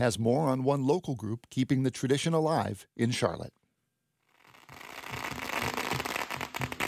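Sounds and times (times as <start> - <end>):
speech: 0.0 - 3.6
string of firecrackers exploding outside a bakery for Lunar New Year: 4.4 - 6.8.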